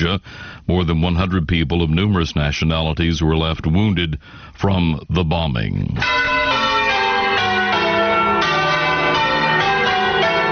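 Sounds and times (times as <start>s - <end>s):
speech: 0.0s - 6.5s
church bells tolling: 6.0s - 10.5s.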